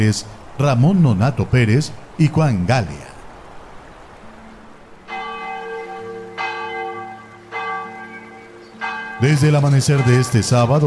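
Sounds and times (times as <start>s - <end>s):
speech: 0.0s - 3.1s, 9.2s - 10.8s
parish church bells ringing at dawn: 5.0s - 10.8s.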